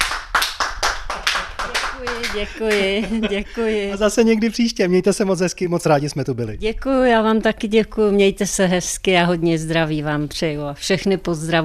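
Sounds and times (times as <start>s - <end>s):
group of people clapping in steady applause: 0.0s - 4.0s
laughter: 1.7s - 4.6s
speech: 2.0s - 11.6s.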